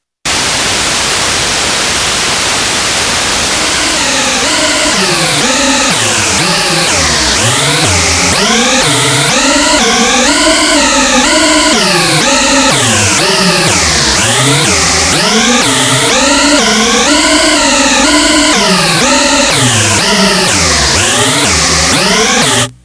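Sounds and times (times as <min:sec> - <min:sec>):
multiphase noise: 0:00.0 - 0:22.8.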